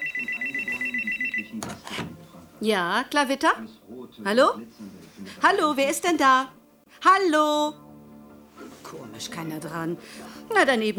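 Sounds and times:
telephone ringing with electronic trill: 0.0 - 1.8
speech: 2.6 - 7.8, 8.9 - 10.9.

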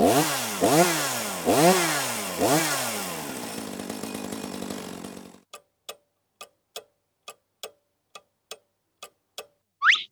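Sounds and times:
firefighters' chainsaw of the kind used to fell trees revving: 0.0 - 5.4
steady evenly spaced ticking: 4.5 - 10.1.

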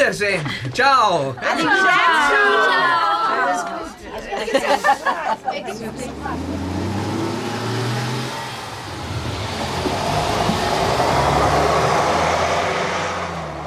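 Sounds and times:
speech: 0.0 - 6.6
people chattering: 0.0 - 11.7
laughter: 0.3 - 7.2
bus engine rumbling as bus pulls away: 4.8 - 13.6.

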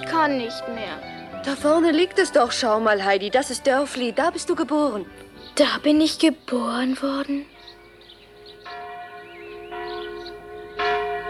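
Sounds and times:
speech: 0.1 - 7.5
village church bell ringing: 7.0 - 11.2.

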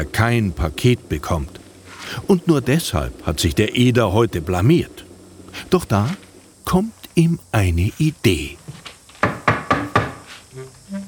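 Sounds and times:
speech: 0.0 - 8.6
firm knocks on a door: 9.2 - 10.2.

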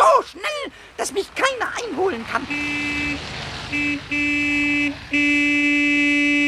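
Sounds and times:
speech: 1.0 - 5.3
car horn honking: 2.4 - 6.4.

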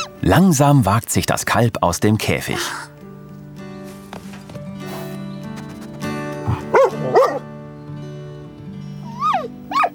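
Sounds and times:
steady musical backdrop: 0.0 - 9.9
speech: 0.2 - 2.9
dog barking excitedly: 6.5 - 7.4.

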